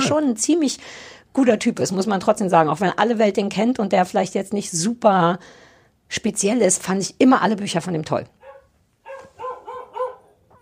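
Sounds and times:
speech: 0.0 - 8.4
dog barking: 8.4 - 10.6.

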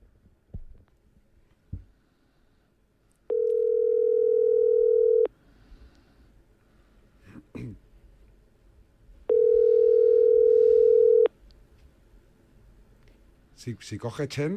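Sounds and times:
soft thumps: 0.5 - 0.9
telephone call ringing tone electronic beep: 3.3 - 5.3, 9.3 - 11.3
speech: 13.7 - 14.5.

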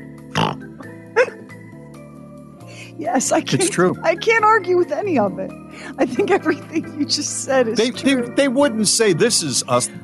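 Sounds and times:
person imitating pig oinks: 0.3 - 1.4
speech: 3.0 - 10.0.

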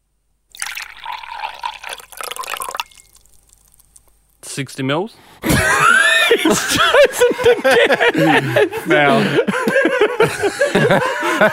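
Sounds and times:
liquid poured into a glass: 0.5 - 4.1
speech: 4.6 - 11.5
laughter: 5.4 - 11.5.

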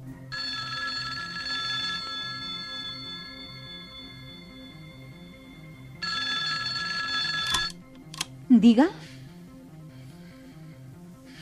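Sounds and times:
telephone ringing with a steady electronic trill: 0.3 - 8.2
speech: 8.6 - 9.1.

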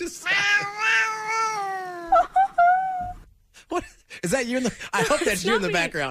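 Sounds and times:
cat meowing and chirping like talking: 0.3 - 2.2
speech: 4.3 - 6.0.

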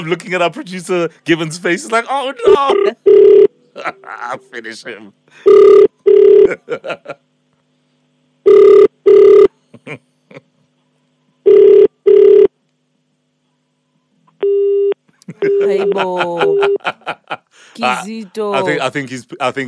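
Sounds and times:
speech: 0.0 - 7.2, 15.3 - 19.6
telephone ringback tone as a call is redialed: 2.5 - 3.5, 5.4 - 6.5, 8.5 - 9.5, 11.4 - 12.5
short steady telephone tone: 2.5 - 3.6, 5.4 - 6.5, 8.4 - 9.5, 11.3 - 12.5, 13.9 - 16.8
laughter: 3.7 - 4.5, 6.5 - 7.2, 9.6 - 10.7, 15.1 - 17.6.

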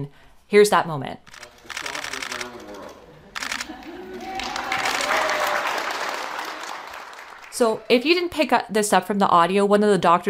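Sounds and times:
speech: 0.0 - 1.4, 7.6 - 10.2
camera shutters clicking and whirring: 1.3 - 3.8
laughter: 1.8 - 6.9.

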